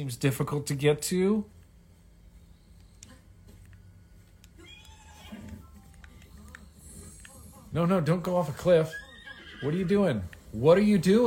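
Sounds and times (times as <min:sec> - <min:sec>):
speech: 0:00.0 - 0:01.6, 0:07.8 - 0:11.2
steady hum: 0:00.0 - 0:11.2
horse whinnying: 0:04.6 - 0:05.6, 0:08.8 - 0:09.9.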